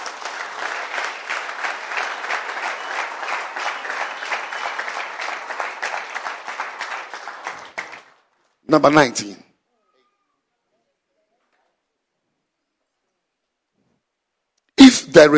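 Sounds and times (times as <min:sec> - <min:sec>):
congregation clapping hands in a church service: 0:00.0 - 0:09.0
speech: 0:08.7 - 0:09.4.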